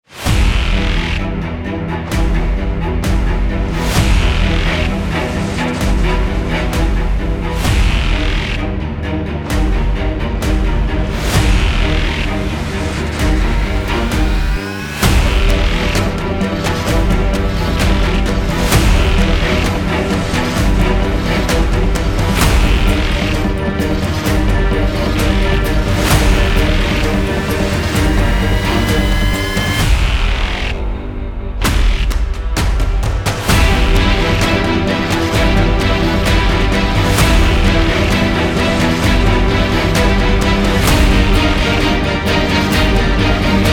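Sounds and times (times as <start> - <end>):
active horror trailer music: 0.0 - 43.7.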